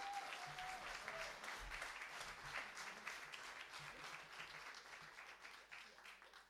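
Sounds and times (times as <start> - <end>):
audience applause: 0.0 - 6.4.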